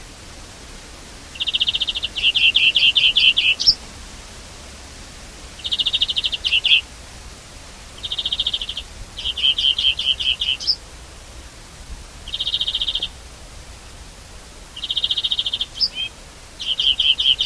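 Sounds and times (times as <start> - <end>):
faint steady background hiss: 0.0 - 17.4
European greenfinch Chloris chloris trilling and chirping: 1.3 - 3.8, 5.6 - 6.8, 8.0 - 10.8, 12.2 - 13.1, 14.8 - 17.4.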